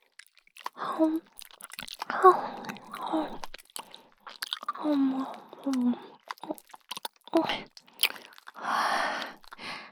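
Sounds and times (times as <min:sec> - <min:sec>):
wet licking on a freshly cleaned ear: 0:00.6 - 0:04.9, 0:05.7 - 0:08.6
speech: 0:01.0 - 0:01.4, 0:02.2 - 0:03.4, 0:04.8 - 0:06.1.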